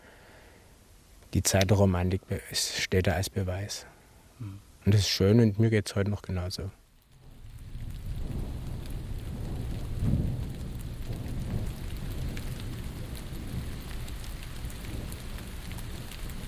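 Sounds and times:
steady rain falling: 0.0 - 16.4
speech: 1.3 - 6.8
distant thunder rumbling: 7.2 - 16.4.

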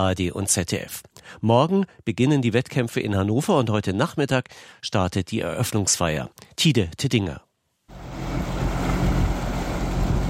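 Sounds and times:
speech: 0.0 - 8.2
faint low tugboat drone: 7.9 - 10.2
rush of wind and water on a lake: 8.0 - 10.2.

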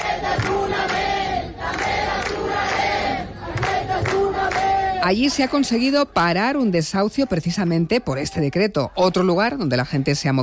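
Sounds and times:
crowd shouting at a city protest encampment in Barcelona: 0.0 - 5.1
speech: 5.0 - 10.4.

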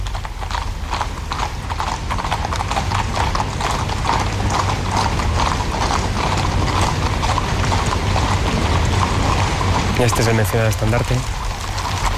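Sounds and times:
many grey chestnut and Hispano-Breton horses' hooves clip-clopping on a hard surface: 0.0 - 12.1
speech: 10.0 - 11.4.

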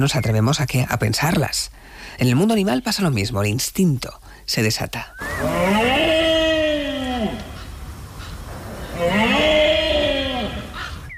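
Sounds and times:
speech: 0.0 - 6.1
rutting red deer roaring in Spain: 5.2 - 11.0.

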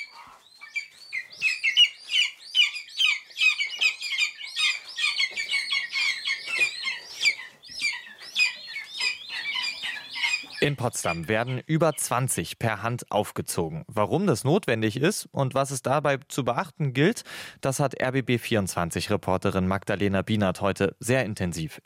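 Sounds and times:
hungry lesser spotted eagle chicks calling at a hand-rearing station: 0.0 - 12.2
speech: 10.6 - 21.8.

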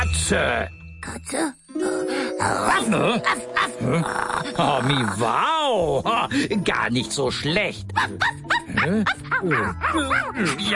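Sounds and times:
speech: 0.1 - 10.7
dog barking and yipping: 8.0 - 10.6.

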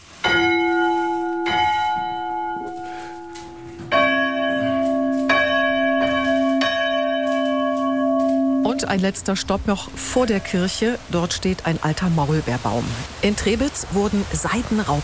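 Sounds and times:
smaller church bell ringing: 0.1 - 11.0
speech: 8.9 - 15.0.

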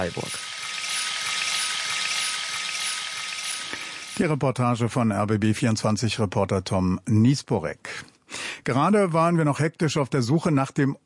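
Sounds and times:
speech: 0.0 - 0.5, 4.2 - 8.1, 8.7 - 11.0
water pouring from a camping shower: 0.0 - 4.2.

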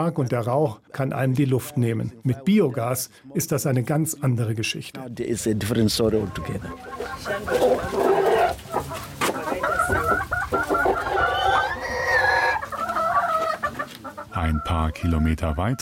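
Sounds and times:
speech: 0.0 - 8.2, 14.4 - 15.8
chickens clucking on a small farm: 5.2 - 15.8
rooster crowing in a long rising call: 11.0 - 13.6.

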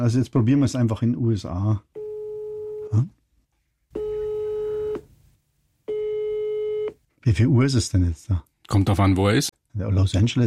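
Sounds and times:
speech: 0.0 - 1.9, 2.9 - 3.2, 7.2 - 10.4
electronic telephone ringback tone: 2.0 - 3.0, 4.0 - 5.0, 5.9 - 6.9.

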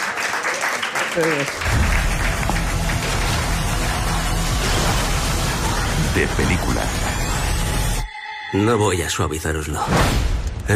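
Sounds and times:
audience applause: 0.0 - 7.0
speech: 1.2 - 2.1, 6.2 - 7.2, 8.5 - 10.7.

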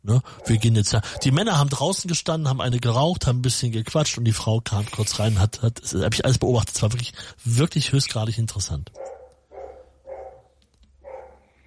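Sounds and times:
speech: 0.1 - 9.1
dog barking: 0.3 - 1.4, 9.0 - 11.6.

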